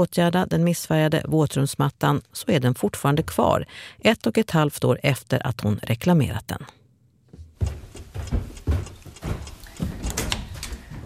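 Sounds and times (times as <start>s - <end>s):
speech: 0.0s - 6.8s
bathroom door bumping, creaking and scraping as it is opened: 7.6s - 11.0s.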